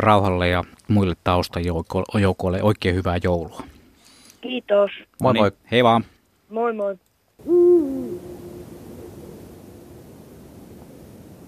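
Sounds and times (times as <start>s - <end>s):
speech: 0.0s - 3.7s, 4.4s - 8.4s
Eurasian eagle-owl low hoot: 7.4s - 10.0s.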